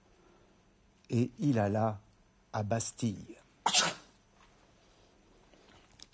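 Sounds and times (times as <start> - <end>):
speech: 1.1 - 3.9
person sneezing: 3.6 - 4.2
faint rustling: 4.2 - 6.1.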